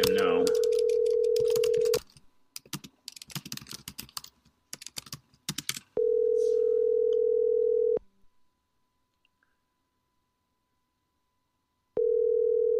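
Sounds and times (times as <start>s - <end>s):
brisk keyboard typing: 0.0s - 5.9s
ringback tone of an outgoing call to a mobile phone: 0.6s - 2.0s, 6.0s - 8.0s, 12.0s - 12.7s.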